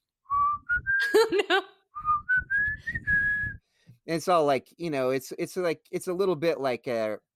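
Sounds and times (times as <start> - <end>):
whistled melody of a rock song intro: 0.3 - 1.2, 2.0 - 3.6
speech: 4.1 - 7.3.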